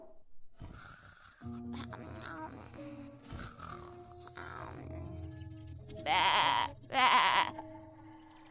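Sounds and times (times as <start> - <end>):
speech: 6.0 - 7.2
sheep bleating: 6.0 - 7.6.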